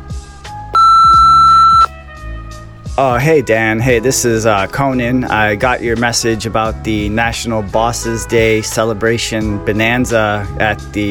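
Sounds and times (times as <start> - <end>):
voicemail answering machine beep: 0.8 - 1.9
speech: 3.0 - 11.0.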